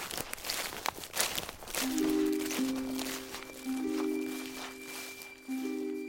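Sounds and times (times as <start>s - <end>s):
quick footsteps crunching over dry ground in a forest: 0.0s - 6.0s
soft sustained musical tones: 1.8s - 6.0s.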